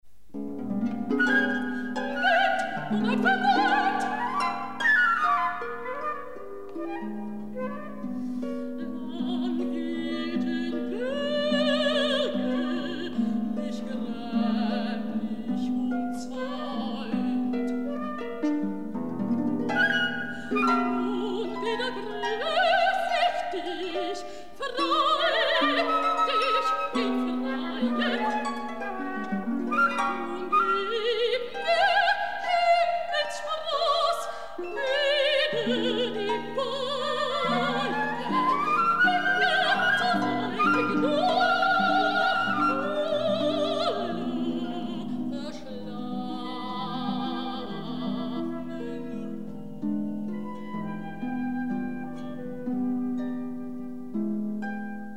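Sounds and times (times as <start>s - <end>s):
harp: 0.3s - 55.1s
flute: 1.1s - 10.2s, 19.7s - 23.9s, 24.9s - 33.4s, 34.7s - 45.0s, 50.4s - 54.5s
mezzo-soprano singing: 1.1s - 18.3s, 19.7s - 52.4s.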